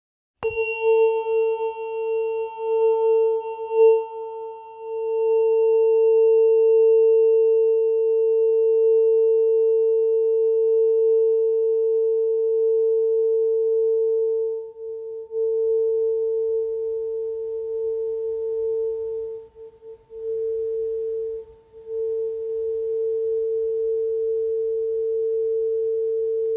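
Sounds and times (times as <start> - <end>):
448 Hz aluminium silicon therapeutic tuning fork ringing: 0.4 - 26.5.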